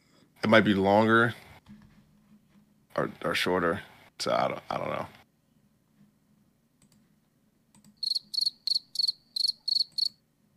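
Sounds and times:
speech: 0.4s - 1.4s, 3.0s - 5.2s
crickets chirping: 8.0s - 10.2s.

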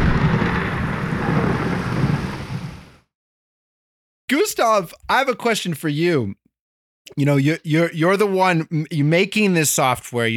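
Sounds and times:
loud thunder crack rolling into rumble: 0.0s - 3.1s
storm noise: 0.0s - 3.1s
speech: 4.4s - 6.4s, 7.1s - 10.3s.

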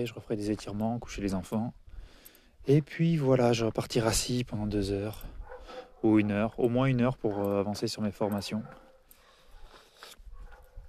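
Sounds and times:
speech: 0.0s - 1.8s, 2.6s - 8.8s
faint dogs barking in the distance: 5.3s - 6.3s, 7.0s - 10.8s.

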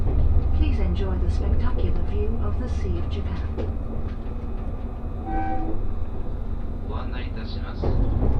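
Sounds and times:
sightseeing train rumbling along rails: 0.0s - 8.3s
speech: 1.0s - 4.1s, 5.3s - 5.9s, 6.9s - 8.3s
brief tonal whine or horn-like hum: 5.1s - 6.1s.

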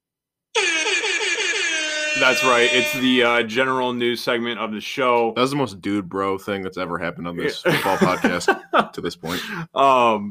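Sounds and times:
loud brassy air horn blaring: 0.6s - 3.6s
speech: 2.2s - 10.2s
laughter: 7.4s - 10.0s.

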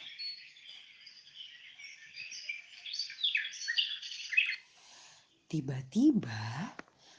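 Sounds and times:
several birds chirping and twittering in a quiet forest: 0.0s - 5.5s
speech: 5.5s - 6.8s.

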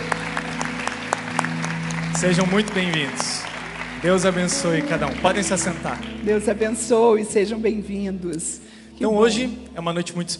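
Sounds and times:
congregation applauding in a reverberant hall: 0.0s - 7.2s
speech: 2.2s - 10.3s.

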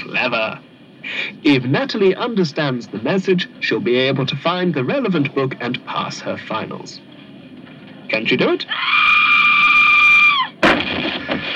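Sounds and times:
speech: 0.2s - 7.1s, 8.1s - 9.3s
woman's piercing wail: 8.7s - 10.6s
heavy thud of a woman fainting and banging her head: 10.6s - 11.5s.

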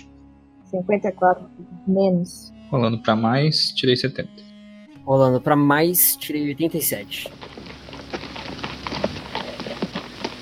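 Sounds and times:
speech: 0.7s - 4.4s, 5.0s - 7.6s
clip-clop hoofbeats of a horse pulling a wagon along a road: 6.6s - 10.3s.

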